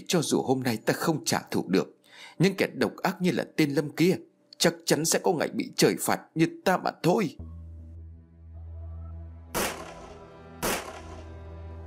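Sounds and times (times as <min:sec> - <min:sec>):
speech: 0:00.1 - 0:07.6
gunshot bangs: 0:09.6 - 0:11.3.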